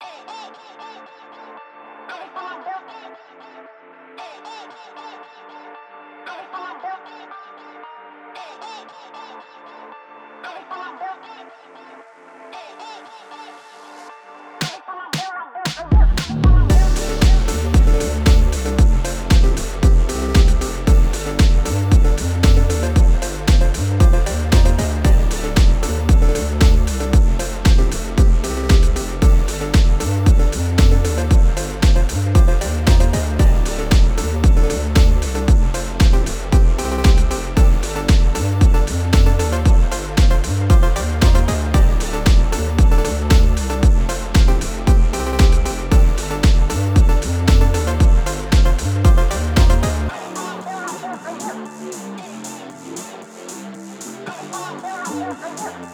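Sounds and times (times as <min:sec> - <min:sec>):
drift phonk music: 0:14.6 - 0:55.9.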